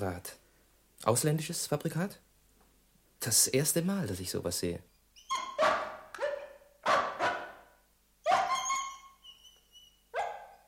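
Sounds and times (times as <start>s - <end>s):
speech: 0.0s - 0.4s, 1.0s - 2.2s, 3.2s - 5.4s
dog howling and yelping: 5.2s - 7.6s, 8.2s - 10.6s.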